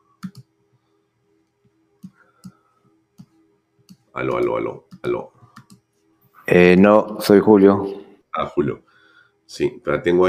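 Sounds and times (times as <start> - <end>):
faint steady hum: 0.0 - 10.2
computer mouse clicking: 0.2 - 0.5, 1.4 - 5.9
speech: 4.2 - 5.4, 6.5 - 8.9, 9.5 - 10.2.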